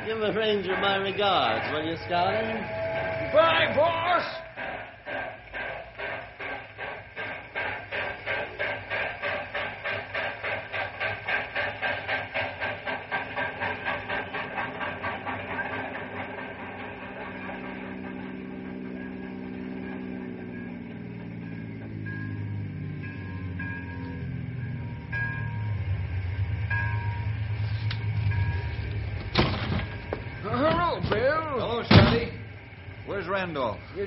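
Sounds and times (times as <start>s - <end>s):
rising mechanical whine: 0.0s - 34.0s
steam locomotive chuffing as it pulls a train away: 0.0s - 34.0s
steam train rolling rumble: 0.0s - 34.0s
speech: 0.1s - 4.4s.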